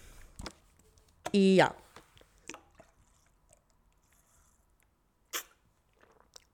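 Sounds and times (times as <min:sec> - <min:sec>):
speech: 0:01.3 - 0:01.8
person sipping water: 0:02.1 - 0:06.5
wet mouth and swallowing sounds: 0:02.2 - 0:06.5.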